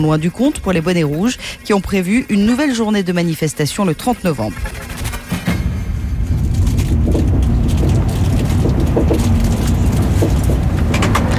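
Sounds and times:
speech: 0.0s - 4.8s
road noise inside a moving car: 4.5s - 11.3s
faint clicks and rattles from the car cabin: 6.4s - 11.3s.

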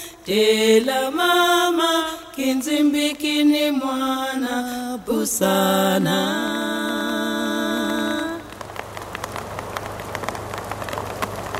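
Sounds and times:
sung melody: 0.0s - 8.5s
speech: 0.2s - 6.8s
rain pattering steadily on a surface: 7.0s - 11.5s
scattered louder raindrops tapping: 7.8s - 11.5s.

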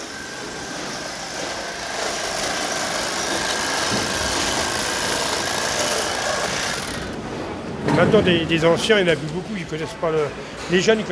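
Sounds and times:
motorized saw running: 0.0s - 7.2s
speech: 8.0s - 11.1s.

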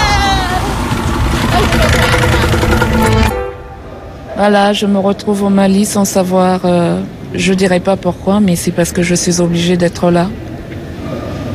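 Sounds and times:
motorcycle engine running: 0.0s - 3.8s
speech: 4.4s - 10.4s.

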